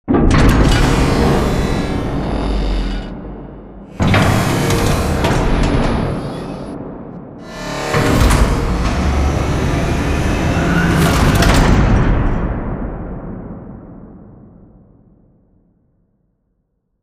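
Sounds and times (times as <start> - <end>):
giant floor panel mechanism arriving, rotating and locking: 0.0 - 6.8, 7.4 - 12.5.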